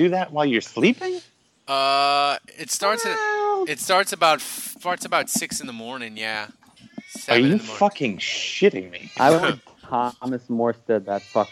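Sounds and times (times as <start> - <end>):
speech: 0.0 - 6.6, 7.2 - 11.5
Bengal cat meowing and yowling: 2.8 - 3.3, 9.0 - 9.5, 11.1 - 11.5.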